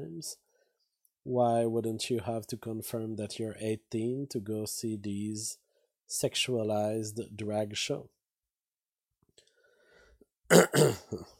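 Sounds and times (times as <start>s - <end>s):
speech: 0.0s - 0.4s, 1.2s - 8.2s, 10.5s - 11.3s
person coughing roughly: 10.5s - 11.3s.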